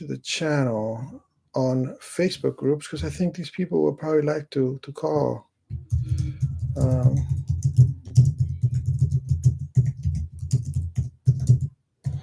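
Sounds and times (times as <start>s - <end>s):
speech: 0.0s - 7.8s
typing on a computer keyboard: 5.7s - 12.2s.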